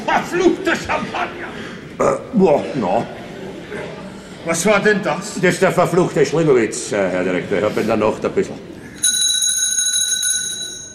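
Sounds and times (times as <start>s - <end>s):
speech: 0.1s - 8.7s
bell ringing with bright sustained metallic tone: 9.0s - 10.9s.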